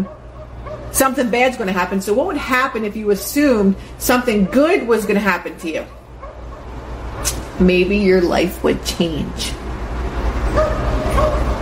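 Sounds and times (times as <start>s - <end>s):
dogs barking outside: 0.0s - 7.2s, 10.2s - 11.6s
steady low rumble of outdoor noise: 0.0s - 11.6s
speech: 0.9s - 6.0s, 7.2s - 9.6s.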